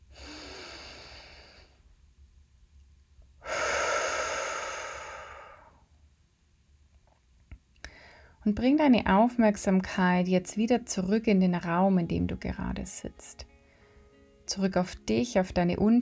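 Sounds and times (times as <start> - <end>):
deep human breath in and out: 0.0 - 1.9, 3.4 - 5.9, 7.9 - 8.4, 13.6 - 14.2
speech: 8.4 - 13.5, 14.5 - 16.0.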